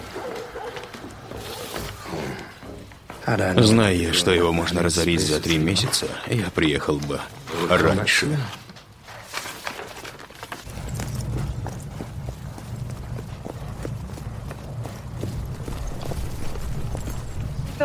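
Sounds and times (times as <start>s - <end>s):
horse hooves clip-clopping as a rider arrives: 0.0s - 7.3s, 10.1s - 17.8s
speech: 3.3s - 8.6s
low rumbling background: 10.7s - 17.8s.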